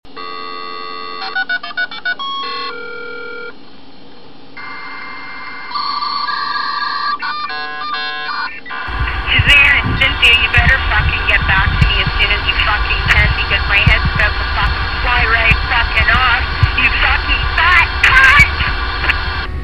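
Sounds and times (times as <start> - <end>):
modem: 0.1 - 3.8, 4.6 - 19.6.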